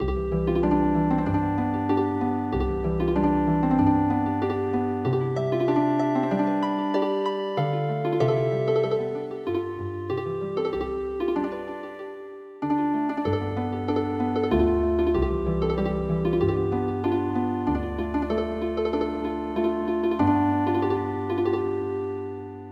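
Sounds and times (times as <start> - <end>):
traditional MIDI harp music: 0.0 - 22.7.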